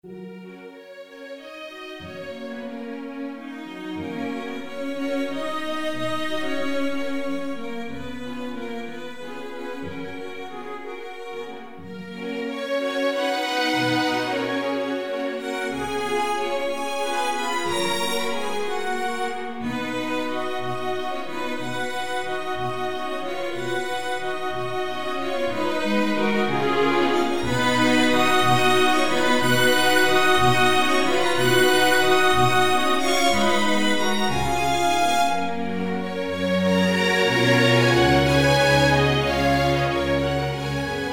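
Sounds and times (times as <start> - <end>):
string orchestra: 0.0 - 41.1.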